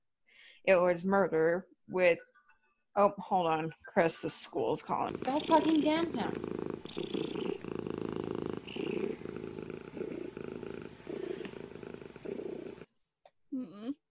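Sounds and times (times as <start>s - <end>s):
speech: 0.6s - 2.4s, 3.0s - 7.2s
cat purring loudly: 5.0s - 12.9s.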